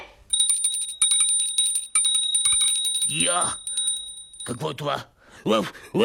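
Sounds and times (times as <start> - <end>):
small bell ringing: 0.3 - 4.8
speech: 3.3 - 3.6, 4.5 - 6.0.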